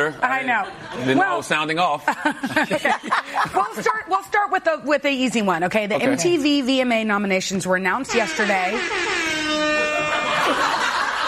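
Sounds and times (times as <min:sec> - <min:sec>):
speech: 0:00.0 - 0:09.6
laughter: 0:02.0 - 0:04.0, 0:09.8 - 0:11.2
air horn sound effect on a talk show: 0:08.1 - 0:11.2.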